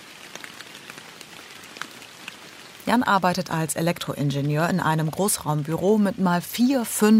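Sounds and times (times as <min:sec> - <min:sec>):
steady rain falling with a soft continuous hiss: 0:00.0 - 0:07.1
speech: 0:02.9 - 0:07.1.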